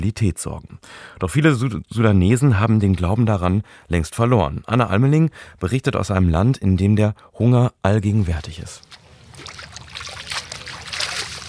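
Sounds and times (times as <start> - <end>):
speech: 0.0 - 9.5
water splashing as leaves are washed in sandy river water: 8.8 - 11.4.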